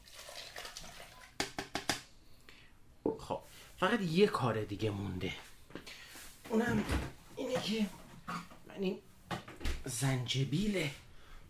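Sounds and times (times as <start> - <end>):
dissolved honey water pouring into a glass over ice: 0.0 - 1.4
speech: 3.3 - 5.5, 6.5 - 9.1, 9.8 - 11.0.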